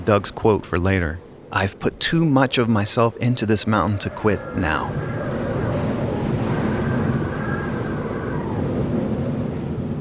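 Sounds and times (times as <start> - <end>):
speech: 0.0 - 5.3
howling wind of a mountain storm: 0.0 - 10.0.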